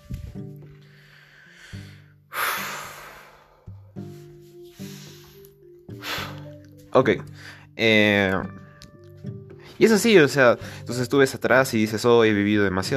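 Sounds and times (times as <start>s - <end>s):
heavy agitated breathing with rough inhales and exhales and voiced gasps: 0.8s - 6.6s
speech: 6.9s - 8.6s, 9.8s - 12.9s.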